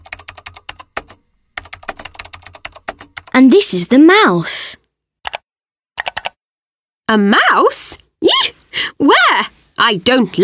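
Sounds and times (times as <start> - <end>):
typing on a computer keyboard: 0.0 - 3.4, 5.2 - 5.4, 6.0 - 6.4
speech: 3.4 - 4.8, 7.1 - 10.4.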